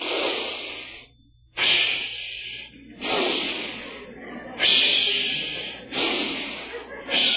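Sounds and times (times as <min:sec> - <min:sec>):
person imitating deep slow sleep breathing: 0:00.0 - 0:07.3
laughter: 0:02.6 - 0:07.3.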